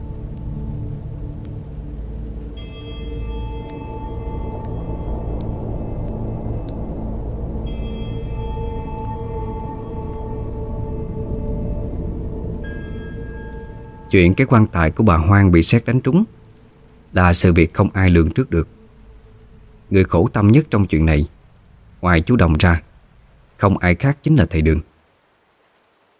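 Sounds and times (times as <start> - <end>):
heavy rain pouring: 0.0 - 26.1
sustained tones: 2.0 - 21.0
speech: 14.1 - 16.4, 17.1 - 18.8, 19.9 - 21.4, 22.0 - 22.9, 23.6 - 24.9.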